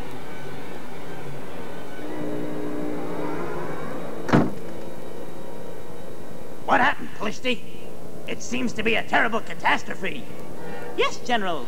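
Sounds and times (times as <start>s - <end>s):
low steady rumble with faint tonal hum: 0.0s - 11.6s
door shutting: 3.7s - 4.9s
speech: 6.7s - 7.7s, 8.3s - 11.6s.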